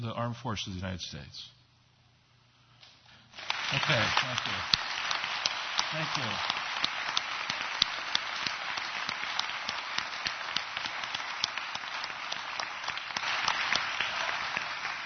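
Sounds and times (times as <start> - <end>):
speech: 0.0 - 1.6, 3.7 - 4.8, 5.9 - 6.6
audience applauding armed forces veterans: 3.3 - 15.0.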